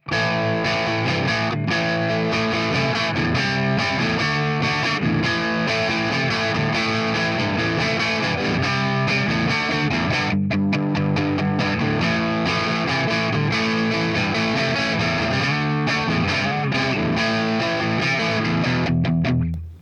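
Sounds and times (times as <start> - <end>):
electric guitar with crunch distortion: 0.0 - 19.8.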